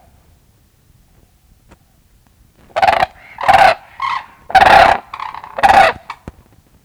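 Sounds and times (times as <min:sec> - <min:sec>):
white-naped crane calling: 0:02.7 - 0:06.5.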